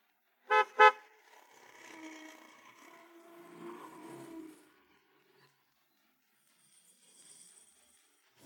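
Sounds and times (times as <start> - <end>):
garbage truck horn toots: 0.5 - 1.0.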